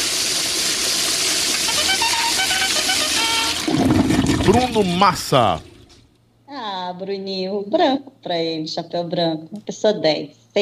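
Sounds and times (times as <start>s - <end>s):
toilet flushing sound effect: 0.0s - 6.1s
speech: 4.5s - 5.7s, 6.9s - 10.6s.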